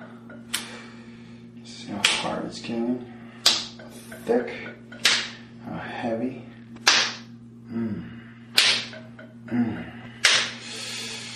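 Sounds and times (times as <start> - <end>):
speech: 1.9 - 3.1, 4.2 - 4.8, 5.7 - 6.5
skin slapping against a palm: 3.4 - 3.8, 5.0 - 5.4, 6.8 - 7.3, 8.6 - 9.0, 10.2 - 10.6.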